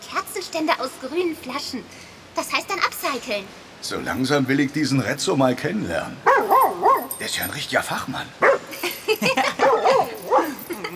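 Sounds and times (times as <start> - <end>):
speech: 0.4 - 6.6, 7.2 - 10.5
dog barking and yipping with whiny tones: 6.2 - 7.3, 8.4 - 8.9, 9.6 - 10.9.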